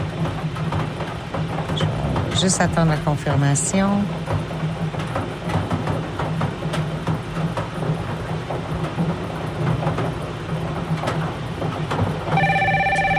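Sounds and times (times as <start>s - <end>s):
steady low rumbling background: 0.0s - 13.1s
speech: 2.4s - 4.5s
telephone ringing with electronic tone: 12.3s - 13.1s.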